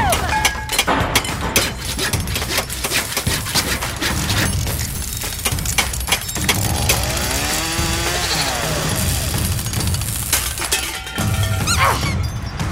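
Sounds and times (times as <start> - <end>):
metallic clanks: 0.0 - 12.7
rapid hammer blows while building an invention: 0.0 - 12.7
whine of power tools: 5.6 - 10.7.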